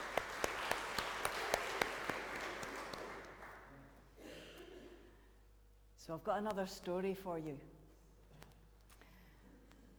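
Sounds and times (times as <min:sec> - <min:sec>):
audience applause for charity walkers: 0:00.0 - 0:03.8
speech: 0:06.1 - 0:07.8.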